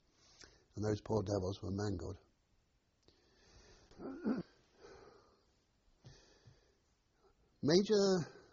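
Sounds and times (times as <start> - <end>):
speech: 0.8 - 2.3, 7.7 - 8.4
man coughing: 4.0 - 4.6.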